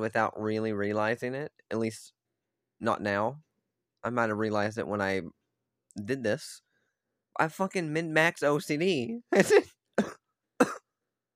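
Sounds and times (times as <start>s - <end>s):
speech: 0.0s - 2.2s, 2.8s - 5.4s, 6.0s - 6.6s, 7.4s - 10.8s
person coughing with harsh heavy hacking coughs: 9.4s - 11.3s.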